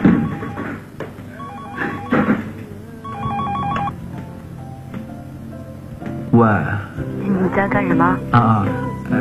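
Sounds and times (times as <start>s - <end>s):
telephone ringing with warbling electronic bursts: 0.0s - 4.0s
speech: 6.4s - 9.1s.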